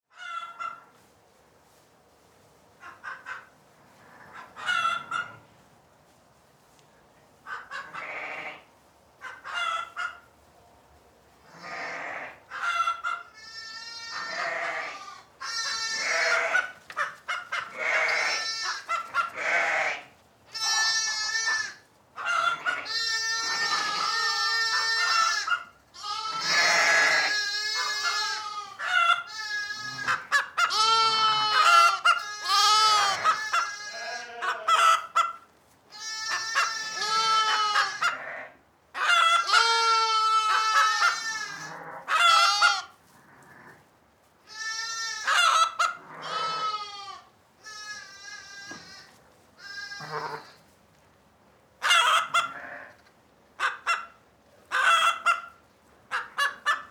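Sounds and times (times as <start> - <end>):
chickens on a farm: 0.2 - 1.1, 2.8 - 5.6, 7.4 - 10.4, 12.2 - 13.4, 15.6 - 20.9, 21.7 - 25.8, 27.2 - 33.8, 34.4 - 35.5, 39.0 - 39.7, 40.5 - 43.9, 45.2 - 46.5, 51.8 - 56.8
sheep on a farm: 7.5 - 10.3, 11.4 - 50.8, 51.8 - 56.8.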